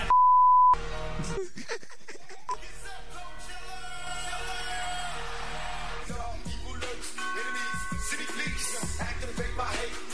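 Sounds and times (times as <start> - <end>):
loud steady censor bleep: 0.1 - 0.8
laughter: 1.2 - 3.1
song with singing: 2.5 - 10.0.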